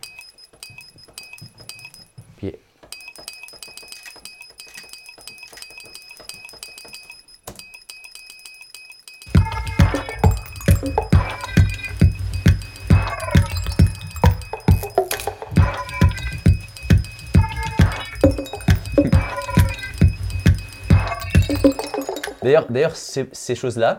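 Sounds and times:
speech: 2.4s - 2.7s, 22.5s - 23.9s
glass struck with added delay effect: 9.3s - 22.5s.

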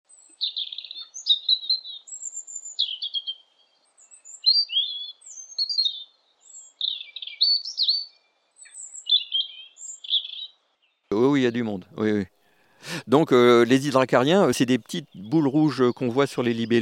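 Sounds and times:
European robin singing: 0.1s - 16.7s
speech: 11.4s - 12.4s, 13.0s - 16.7s.

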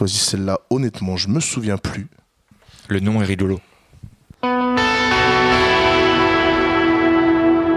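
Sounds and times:
speech: 0.0s - 2.2s, 2.9s - 3.7s
sustained synth pad with ping-pong delay and shimmer reverb: 4.5s - 7.7s.

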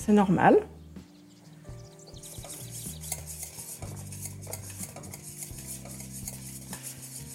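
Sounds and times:
speech: 0.0s - 0.8s
whisk stirring melting caramel in a pan: 2.2s - 7.3s.

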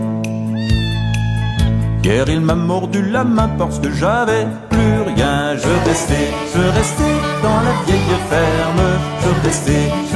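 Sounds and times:
small tabby cat meowing loudly: 0.6s - 1.9s
speech: 2.0s - 10.1s.

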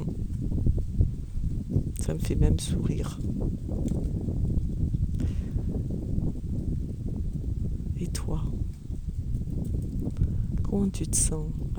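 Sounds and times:
wind blowing into the microphone: 0.0s - 11.7s
speech: 2.1s - 4.5s, 8.2s - 8.6s, 10.8s - 11.7s.

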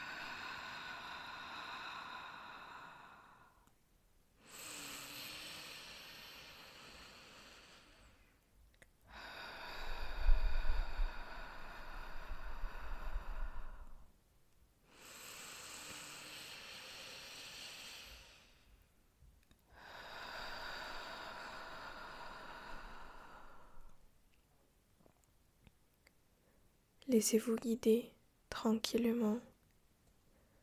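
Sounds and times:
deep inhalations through nose and exhalations through mouth: 0.0s - 3.7s, 4.4s - 8.4s, 9.1s - 14.2s, 14.9s - 19.0s, 19.7s - 24.1s
speech: 27.1s - 29.5s.

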